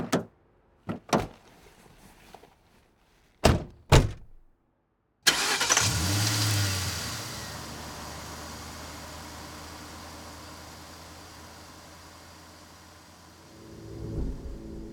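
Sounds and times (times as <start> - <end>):
sharp car door thuds: 3.4 - 4.4
car engine turning over and driving away: 5.3 - 14.9.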